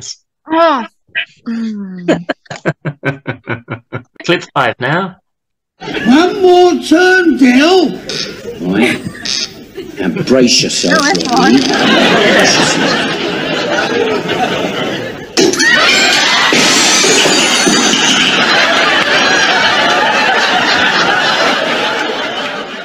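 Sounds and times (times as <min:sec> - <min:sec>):
speech: 0:00.0 - 0:03.4, 0:04.2 - 0:05.2, 0:05.8 - 0:09.4, 0:10.0 - 0:14.8
people laughing in a crowd: 0:02.0 - 0:04.5, 0:05.8 - 0:22.8
busy crowd chatter: 0:07.9 - 0:22.8
glass shattering with a sharp bright crash: 0:15.4 - 0:18.5.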